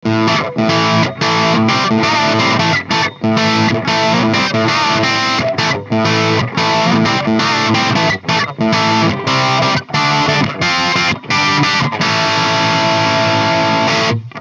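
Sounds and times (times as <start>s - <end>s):
micro amplifier recorded through a speaker cabinet and microphone: 0.0s - 14.3s.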